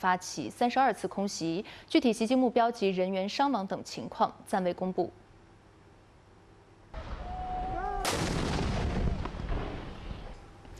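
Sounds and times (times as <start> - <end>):
speech: 0.0 - 5.2
artillery shelling from government forces in combat in southwestern Yemen: 7.0 - 10.3
heavy machine gun fire from government forces in southwestern Yemen: 8.0 - 10.0.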